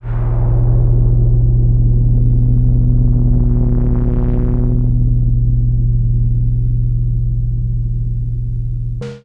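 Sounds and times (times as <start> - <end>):
rumbling muddy chord pad: 0.0 - 9.2.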